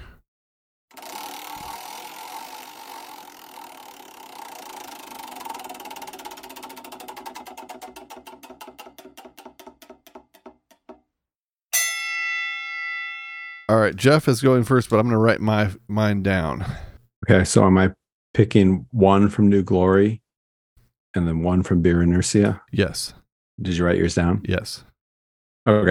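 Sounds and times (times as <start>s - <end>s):
dusty cobweb-covered prize wheel spinning with clicks: 0.9s - 10.5s
bright ringing bell-like ding: 11.8s - 13.7s
speech: 13.7s - 20.2s, 21.2s - 24.9s, 25.6s - 25.8s.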